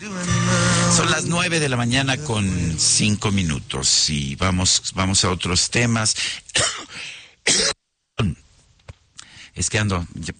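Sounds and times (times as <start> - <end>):
speech: 1.0 - 8.4, 9.6 - 10.3
person coughing from a cold: 6.6 - 8.3.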